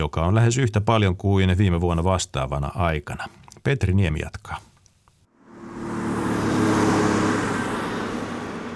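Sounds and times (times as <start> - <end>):
speech: 0.0 - 4.7
heavy road traffic roaring past an asphalt roadwork site: 5.3 - 8.7.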